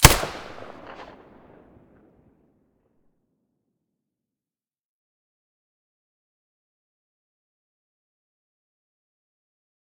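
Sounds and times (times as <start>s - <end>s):
silenced weapon gunshot: 0.0s - 1.3s.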